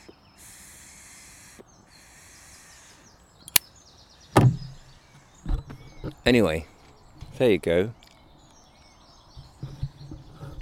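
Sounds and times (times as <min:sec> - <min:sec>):
misaligned wooden drawer clunks: 0:04.4 - 0:04.8
speech: 0:06.3 - 0:06.7, 0:07.4 - 0:08.0.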